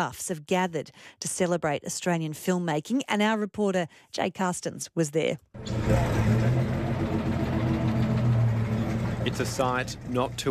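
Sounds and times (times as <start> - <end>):
speech: 0.0 - 6.2, 9.3 - 10.4
safari truck engine rumbling while driving: 5.6 - 10.4.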